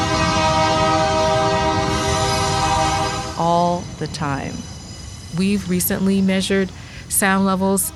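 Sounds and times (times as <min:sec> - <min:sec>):
train horn-like tonal bands: 0:00.0 - 0:03.6, 0:07.6 - 0:07.9
train rolling along a rail line beside a trucking yard: 0:00.0 - 0:07.9
speech: 0:04.0 - 0:04.7, 0:05.3 - 0:07.9.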